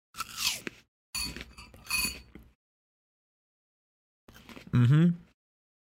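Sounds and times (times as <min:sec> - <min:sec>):
crunching bites into a crisp apple: 0:00.2 - 0:00.9
person making a satisfied hum-like vocal sound: 0:04.7 - 0:05.3.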